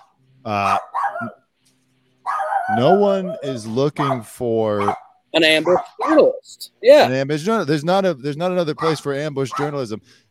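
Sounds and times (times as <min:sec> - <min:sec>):
speech: 0:00.4 - 0:01.4, 0:02.7 - 0:10.2
dog barks: 0:00.6 - 0:01.4, 0:02.2 - 0:06.4, 0:08.8 - 0:09.8.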